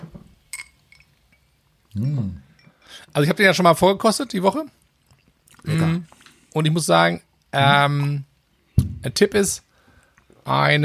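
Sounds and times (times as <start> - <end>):
two glasses of gin clinking in a toast: 0.5 - 1.5, 2.5 - 2.8
speech: 2.0 - 2.4, 3.1 - 4.8, 5.6 - 8.3, 9.0 - 9.7, 10.4 - 10.8.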